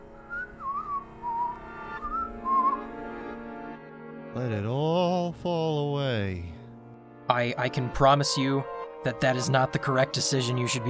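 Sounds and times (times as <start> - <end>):
person whistling tunelessly: 0.2 - 2.9
speech: 4.4 - 6.6, 7.3 - 10.8.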